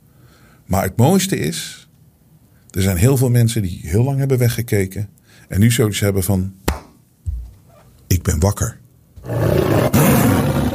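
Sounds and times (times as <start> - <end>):
speech: 0.7 - 1.9, 2.8 - 6.8, 8.2 - 8.8
lion roaring: 9.2 - 10.7.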